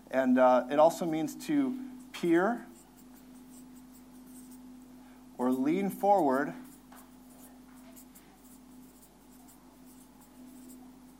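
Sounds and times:
low steady hum: 0:00.0 - 0:11.1
speech: 0:00.1 - 0:02.7, 0:05.4 - 0:06.6
pen or marker scratching while handwriting: 0:02.7 - 0:04.6, 0:06.2 - 0:11.1.

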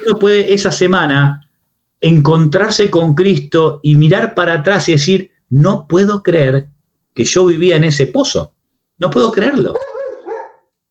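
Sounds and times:
speech: 0:00.0 - 0:01.4, 0:02.0 - 0:09.9
dog barking: 0:09.8 - 0:10.7.

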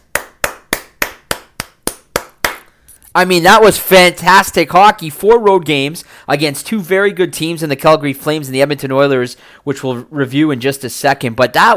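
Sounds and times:
single person clapping hands: 0:00.0 - 0:02.7
speech: 0:03.2 - 0:11.7.

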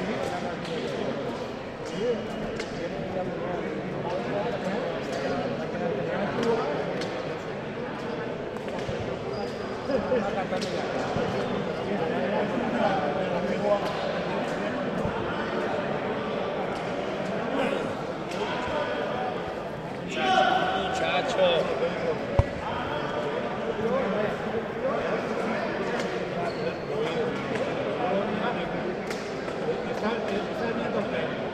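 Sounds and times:
murmur of crowd voices at a pilota match: 0:00.0 - 0:31.5
sharp pilota ball strikes: 0:22.3 - 0:22.8.

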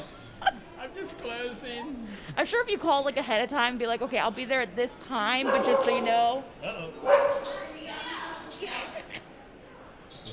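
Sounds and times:
speech: 0:01.5 - 0:07.6
dog barking in short sharp bursts: 0:05.4 - 0:06.2, 0:07.0 - 0:07.6.

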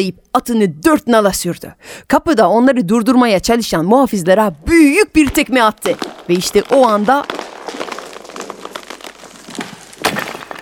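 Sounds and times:
speech: 0:00.0 - 0:07.4
honey pot falling from a branch and shattering: 0:05.3 - 0:10.5.

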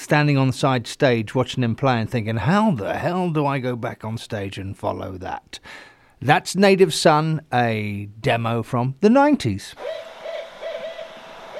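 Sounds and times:
steady hiss: 0:00.0 - 0:11.5
speech: 0:00.1 - 0:10.1
owl hooting: 0:09.8 - 0:11.5.

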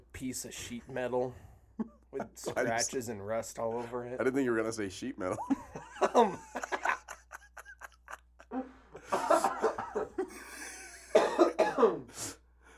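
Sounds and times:
speech: 0:00.2 - 0:06.6
throaty laugh-like sounds: 0:05.4 - 0:11.2
person coughing: 0:11.0 - 0:12.2.

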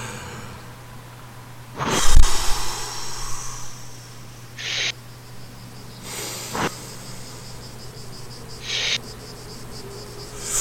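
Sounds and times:
deep breaths during a guided meditation: 0:00.0 - 0:00.9, 0:01.8 - 0:04.9, 0:06.0 - 0:07.8, 0:10.2 - 0:10.5.

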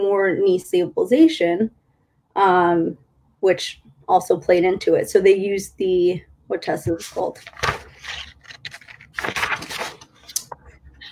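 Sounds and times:
speech: 0:00.0 - 0:01.8, 0:02.4 - 0:08.3
paper pages flipping and rustling: 0:07.0 - 0:11.0.

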